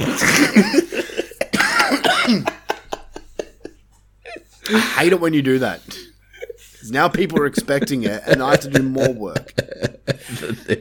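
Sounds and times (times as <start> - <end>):
speech: 0.0 - 0.8, 5.0 - 5.9, 6.9 - 9.8
person in a harsh raspy coughing fit: 0.0 - 2.7
laughter: 0.0 - 5.2, 5.8 - 10.7.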